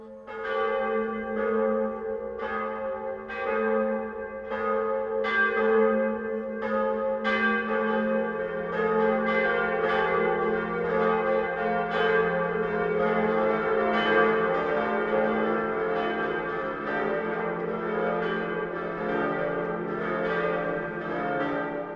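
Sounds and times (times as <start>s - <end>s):
several church bells ringing a midday peal: 0.0s - 21.9s.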